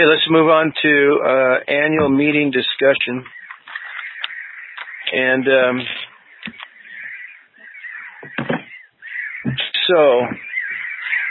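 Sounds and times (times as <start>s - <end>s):
speech: 0.0s - 3.4s, 5.1s - 6.1s, 8.3s - 8.6s, 9.4s - 10.4s
chatter of bird calls: 3.0s - 11.2s
birds, likely crows, cawing: 3.2s - 11.2s.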